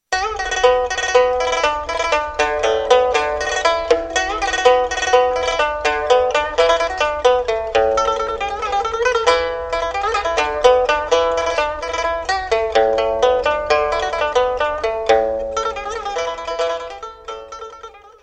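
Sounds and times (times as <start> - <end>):
pipa: 0.1 - 18.2.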